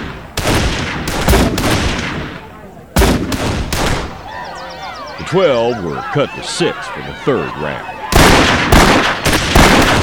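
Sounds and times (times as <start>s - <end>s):
gunshots from shooters on a firing line at a shooting competition: 0.0s - 2.4s, 3.0s - 4.2s, 8.1s - 10.0s
laughter: 4.2s - 9.3s
speech: 5.3s - 8.8s.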